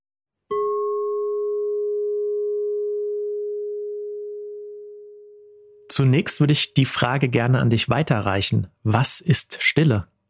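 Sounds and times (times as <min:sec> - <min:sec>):
pure sine tone played as a hearing test: 0:01.0 - 0:05.9
speech: 0:06.0 - 0:10.1.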